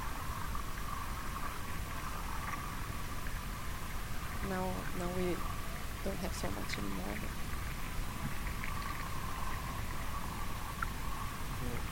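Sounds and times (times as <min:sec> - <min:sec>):
faint crackling static from the ionosphere: 0:00.0 - 0:11.8
speech: 0:04.4 - 0:07.5.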